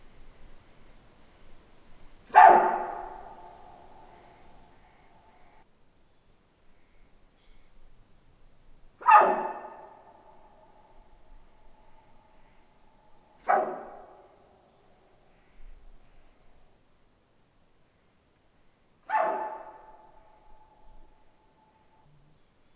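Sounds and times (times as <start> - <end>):
female Siberian wapiti Cervus elaphus sibiricus loud oral alarm barks toward a researcher: 2.3 - 4.7, 9.0 - 10.2, 13.4 - 14.4, 19.1 - 20.4.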